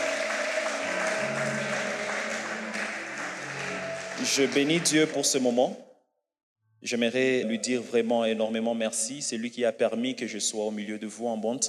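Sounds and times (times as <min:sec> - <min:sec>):
church congregation applauding in praise: 0:00.0 - 0:05.7
speech: 0:04.2 - 0:05.9, 0:06.8 - 0:11.6.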